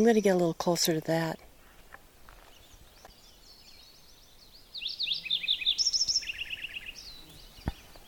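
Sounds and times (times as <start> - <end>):
speech: 0.0 - 1.4
Lincoln's sparrow singing: 0.0 - 8.0
hiss: 0.0 - 8.0.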